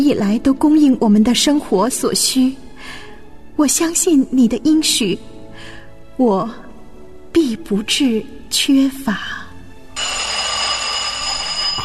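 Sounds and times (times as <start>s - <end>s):
speech: 0.0s - 5.3s, 6.2s - 6.6s, 7.4s - 9.4s
telephone ringing: 10.0s - 11.8s.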